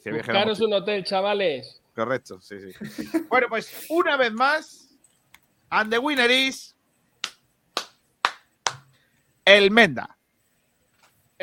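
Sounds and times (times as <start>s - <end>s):
speech: 0.0s - 4.9s, 5.7s - 6.8s, 9.5s - 10.2s
laughter: 2.7s - 3.4s
sharp isolated claps: 7.2s - 9.0s.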